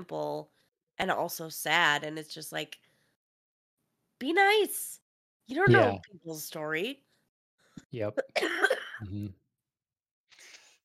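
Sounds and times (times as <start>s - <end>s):
speech: 0.0s - 2.9s, 4.2s - 7.0s, 7.8s - 9.4s
low voiced grunt: 5.7s - 6.0s, 9.0s - 9.3s
person coughing: 5.7s - 6.0s, 8.2s - 9.3s.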